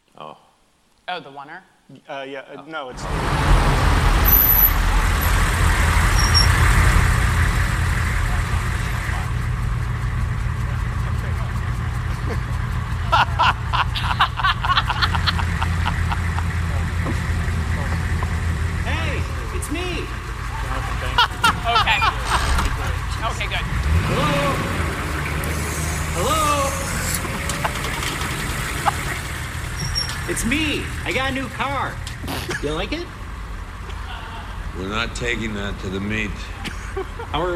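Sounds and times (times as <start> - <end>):
speech: 1.1 - 4.1, 32.6 - 33.2, 34.8 - 37.5
indistinct voices: 1.9 - 33.2, 33.9 - 36.7
continuous road traffic: 2.9 - 37.5
truck engine rumbling: 2.9 - 37.5
brake hisses: 3.0 - 13.0, 15.1 - 31.1
laughter: 10.8 - 29.7, 32.2 - 33.0, 33.8 - 37.5.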